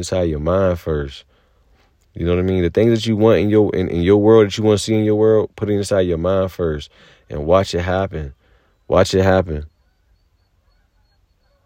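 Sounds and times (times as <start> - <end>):
speech: 0.0 - 1.3, 2.2 - 9.7
geese honking: 7.8 - 11.6.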